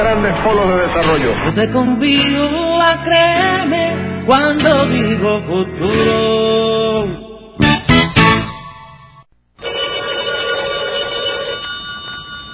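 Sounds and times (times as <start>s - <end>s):
speech: 0.0s - 7.2s
telephone ringing: 9.6s - 12.5s.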